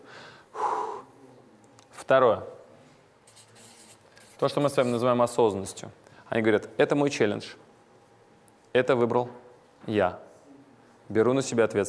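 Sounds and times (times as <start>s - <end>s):
deep breath inhale and exhale: 0.0s - 1.1s
speech: 2.1s - 2.6s, 4.4s - 7.6s, 8.7s - 10.2s, 11.1s - 11.8s.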